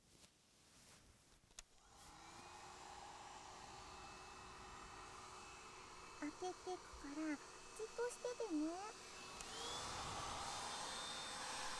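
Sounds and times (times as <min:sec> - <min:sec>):
hair dryer blowing: 0:01.8 - 0:11.7
speech: 0:06.2 - 0:09.2
hair dryer switch soft click: 0:09.3 - 0:09.6.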